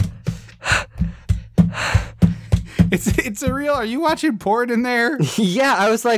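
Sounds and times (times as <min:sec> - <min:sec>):
voice imitating heavy breathing of running men: 0:00.0 - 0:03.0
soft thumps: 0:00.0 - 0:04.6
speech: 0:02.9 - 0:06.1.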